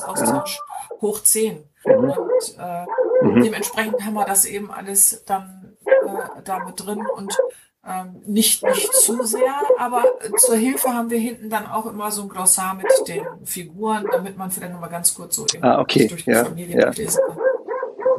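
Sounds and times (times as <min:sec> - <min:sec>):
dog barking: 0:00.0 - 0:00.5, 0:01.9 - 0:03.9, 0:05.8 - 0:07.5, 0:08.6 - 0:10.8, 0:12.8 - 0:13.4, 0:14.0 - 0:14.3, 0:17.1 - 0:18.1
speech: 0:00.0 - 0:17.5.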